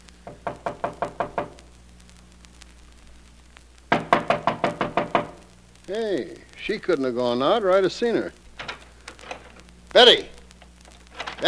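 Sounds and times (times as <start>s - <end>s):
faint hum: 0.0s - 11.4s
knocking on a door: 0.3s - 1.6s, 3.9s - 5.4s
speech: 5.9s - 8.4s, 10.0s - 10.3s.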